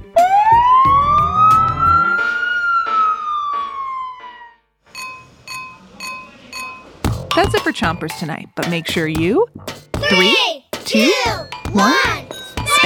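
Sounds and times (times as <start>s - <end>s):
fire truck siren wailing: 0.0s - 4.7s
speech: 7.7s - 12.3s.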